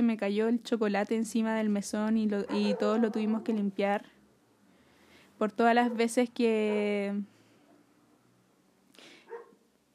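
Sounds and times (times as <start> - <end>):
speech: 0.1 - 4.2, 5.4 - 7.3
small dog barking: 2.4 - 3.6, 9.3 - 9.6.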